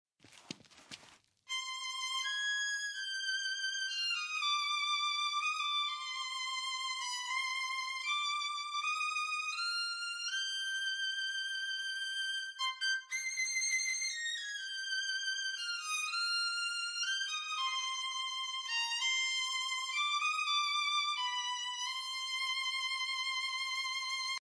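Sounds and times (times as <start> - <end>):
tiniest violin playing: 1.5 - 24.4.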